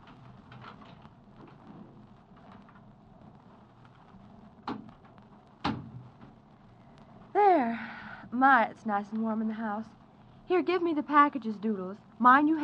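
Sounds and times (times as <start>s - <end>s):
rain-like noise: 0.0s - 12.6s
front door thud: 5.6s - 6.3s
speech: 7.6s - 12.6s.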